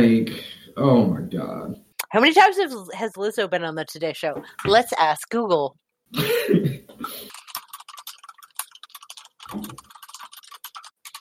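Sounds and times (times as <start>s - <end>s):
speech: 0.0s - 7.4s
brief throat-clearing: 6.2s - 7.0s
rapid irregular keyboard typing: 7.2s - 11.1s.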